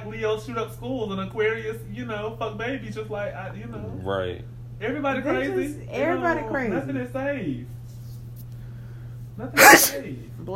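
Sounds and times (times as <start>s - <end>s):
low steady hum: 0.0s - 10.5s
speech: 0.2s - 7.8s, 9.4s - 10.5s
person sneezing: 9.6s - 10.1s.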